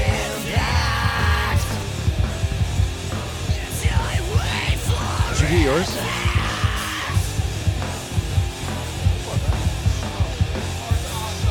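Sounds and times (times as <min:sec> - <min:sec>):
loud driving music with heavy pounding beat: 0:00.0 - 0:11.4
man imitating a scream: 0:04.9 - 0:07.3
speech: 0:05.7 - 0:06.0.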